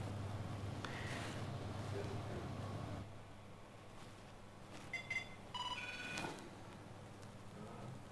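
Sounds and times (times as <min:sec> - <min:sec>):
low hum: 0:00.0 - 0:08.0
mobile phone dialing beeps: 0:04.9 - 0:06.3.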